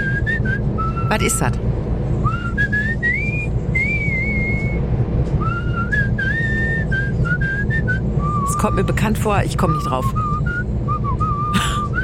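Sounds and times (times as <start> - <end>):
man whistling a cheerful tune: 0.0 - 1.1, 2.2 - 4.8, 5.4 - 8.7, 10.1 - 12.0
low steady rumble: 0.0 - 12.0
speech: 1.1 - 2.4, 8.6 - 10.2.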